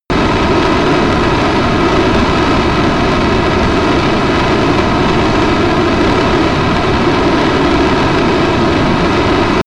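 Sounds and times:
military jet B-1B Lancer turbine idling close: 0:00.1 - 0:09.6.

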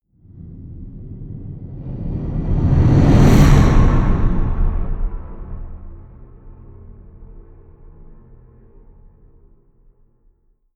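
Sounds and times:
race whoosh: 0:00.4 - 0:07.1.

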